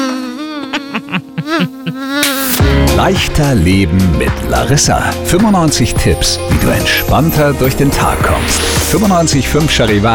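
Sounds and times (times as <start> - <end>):
mosquito whining buzz: 0.0 - 2.6
speech: 3.0 - 10.1.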